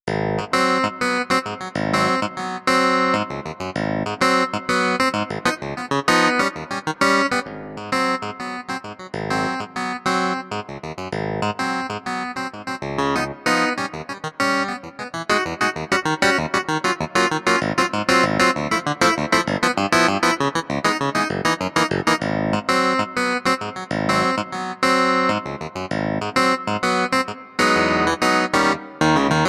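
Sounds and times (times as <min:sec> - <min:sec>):
swingy electric piano: 0:00.4 - 0:29.4.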